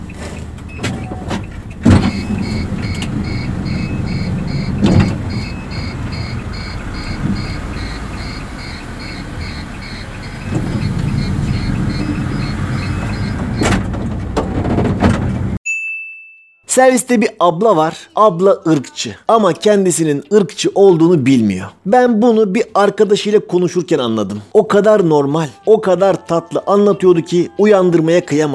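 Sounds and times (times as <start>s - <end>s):
shuttle minibus sliding door closing in Istanbul: 0.0s - 15.6s
steady shuttle minibus engine rumble: 0.0s - 15.6s
rapid electronic beeping: 1.9s - 13.7s
speech: 16.8s - 28.5s.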